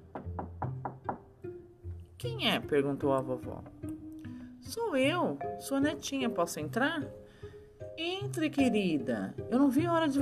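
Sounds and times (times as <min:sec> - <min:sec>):
knocking on a door: 0:00.0 - 0:01.4
speech: 0:02.2 - 0:03.8, 0:04.7 - 0:07.2, 0:08.0 - 0:10.2.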